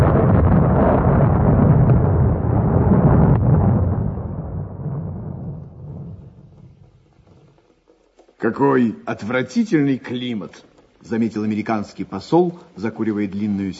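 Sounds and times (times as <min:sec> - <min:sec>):
deafening crack of thunder with heavy booming rumble: 0:00.0 - 0:07.3
speech: 0:08.5 - 0:13.7.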